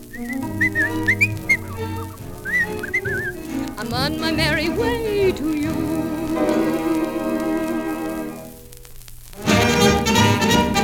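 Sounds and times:
instrumental accompaniment: 0:00.0 - 0:08.7, 0:09.4 - 0:10.8
person whistling a lively bouncing melody: 0:00.1 - 0:03.4
speech: 0:03.8 - 0:06.9.

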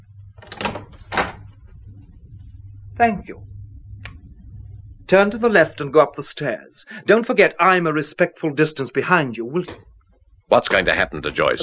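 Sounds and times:
low steady hum: 0:00.0 - 0:11.6
door opened with a creaky scraping sweep: 0:00.3 - 0:01.6
speech: 0:03.0 - 0:03.5, 0:05.1 - 0:09.9, 0:10.5 - 0:11.6.

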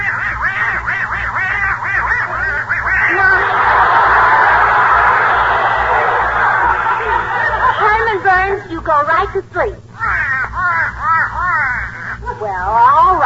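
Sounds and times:
duck quacking: 0:00.0 - 0:03.4, 0:10.0 - 0:12.3
laughter: 0:02.0 - 0:09.6.

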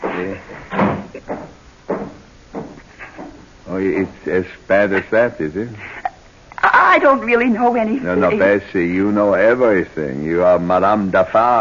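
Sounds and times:
speech: 0:00.2 - 0:00.8, 0:03.8 - 0:05.9, 0:07.0 - 0:11.5
door pulled shut with wooden knocks and thuds: 0:00.6 - 0:03.4.

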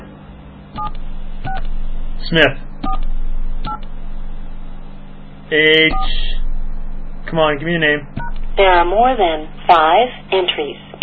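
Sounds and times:
steady low electrical hum: 0:00.0 - 0:11.0
speech: 0:00.8 - 0:01.1, 0:02.2 - 0:03.1, 0:05.5 - 0:06.4, 0:07.3 - 0:11.0
touch-tone keypad beep entering a letter in a phone directory: 0:00.8 - 0:01.7, 0:02.8 - 0:03.8.

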